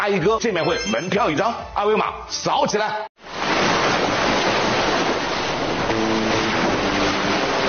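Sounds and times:
speech: 0.0s - 3.1s
ocean waves: 3.2s - 7.6s.

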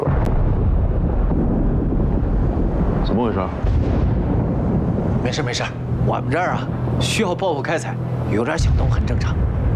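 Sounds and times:
mining blast explosion: 0.1s - 6.1s, 8.6s - 9.7s
underground rumble from mining explosion: 0.1s - 9.7s.

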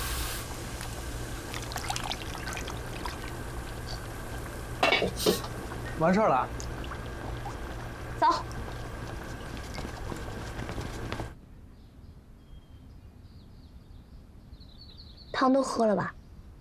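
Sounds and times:
egg yolk oil cooking in a pan: 0.0s - 11.4s.

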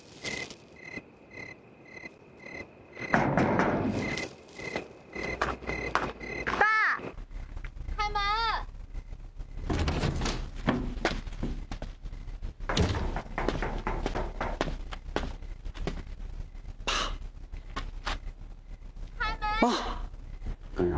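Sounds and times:
insects chirping: 0.0s - 20.9s
knocking on a door: 3.0s - 3.9s, 12.6s - 15.3s
speech: 19.7s - 19.9s.

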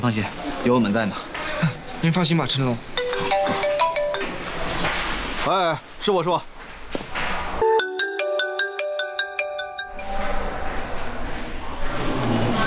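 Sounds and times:
speech: 0.0s - 3.6s, 5.4s - 6.5s
noise: 0.0s - 7.6s, 9.9s - 12.6s
mobile phone ringtone for an incoming call: 3.0s - 4.5s, 7.6s - 10.6s.

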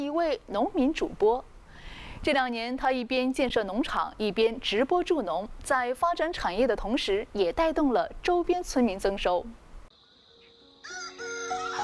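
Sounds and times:
speech: 0.2s - 1.5s, 2.2s - 9.6s
rooster crowing on a chicken farm: 10.8s - 11.8s.

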